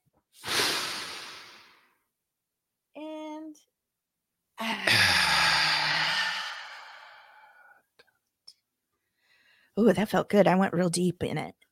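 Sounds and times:
person taking a deep breath in: 0:00.4 - 0:02.0, 0:04.7 - 0:07.8, 0:09.1 - 0:09.7
speech: 0:09.8 - 0:11.6.

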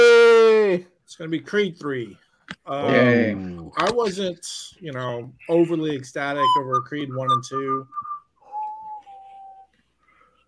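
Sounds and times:
faint noise: 0:00.0 - 0:10.4
speech: 0:00.8 - 0:08.1
person whistling one long steady note: 0:06.4 - 0:09.8.

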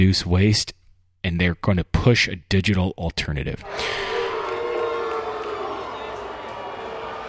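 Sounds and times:
speech: 0:00.0 - 0:04.1
large crowd booing in disapproval: 0:03.6 - 0:07.2.

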